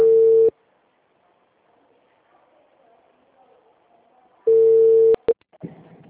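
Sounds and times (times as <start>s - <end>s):
telephone call tone beep: 0.0s - 0.5s, 4.5s - 5.4s.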